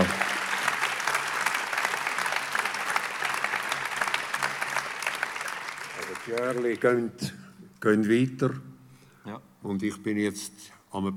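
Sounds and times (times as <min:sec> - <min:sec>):
audience applause after a morning message: 0:00.0 - 0:07.2
speech: 0:06.3 - 0:11.1.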